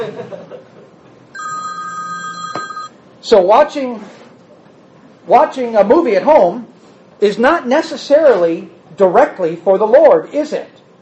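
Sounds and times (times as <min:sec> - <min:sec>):
laughter: 0:00.0 - 0:00.9
telephone ringing with a bright electronic trill: 0:01.4 - 0:03.0
speech: 0:03.2 - 0:04.2, 0:05.3 - 0:10.7.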